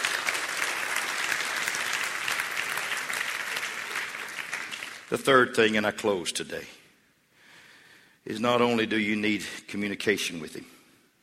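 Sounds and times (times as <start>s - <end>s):
large crowd clapping: 0.0s - 5.4s
speech: 5.1s - 6.8s, 8.3s - 10.8s.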